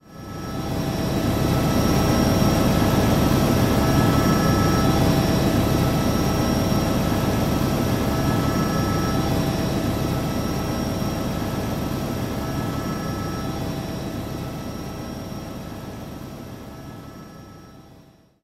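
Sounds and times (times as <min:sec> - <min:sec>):
helicopter: 0:00.0 - 0:18.4.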